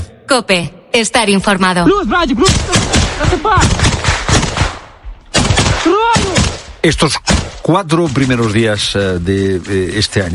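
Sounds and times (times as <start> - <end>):
speech: 0.3 - 3.9, 5.8 - 10.3
rapid gunfire in dense bursts during a shooting: 2.4 - 8.6.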